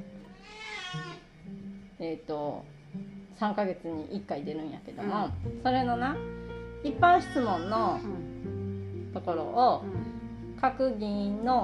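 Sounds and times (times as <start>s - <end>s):
cat meowing: 0.3s - 1.3s, 7.2s - 8.0s
speech: 2.1s - 8.3s, 9.2s - 11.6s.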